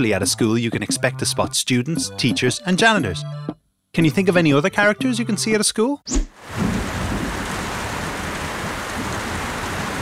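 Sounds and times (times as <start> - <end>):
speech: 0.0 - 6.7
rain pouring: 6.4 - 10.0
thunder rumble: 6.4 - 10.0.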